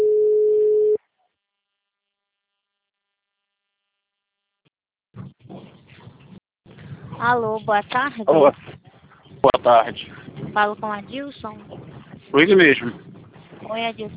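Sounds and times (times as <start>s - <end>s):
ringback tone of an outgoing telephone call: 0.0s - 1.0s
speech: 7.2s - 8.8s, 9.4s - 13.1s, 13.7s - 14.1s.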